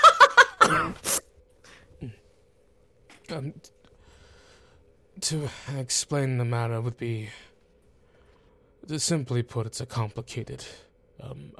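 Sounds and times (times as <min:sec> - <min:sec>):
character coughing: 0:00.4 - 0:01.2
speech: 0:00.7 - 0:01.1, 0:02.0 - 0:02.2, 0:03.3 - 0:03.8, 0:05.2 - 0:07.5, 0:08.8 - 0:11.5.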